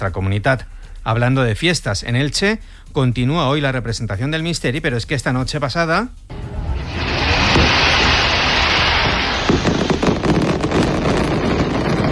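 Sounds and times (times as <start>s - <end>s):
speech: 0.0s - 6.5s
Gran Palmera rocket fireworks hissing roar: 6.3s - 12.1s.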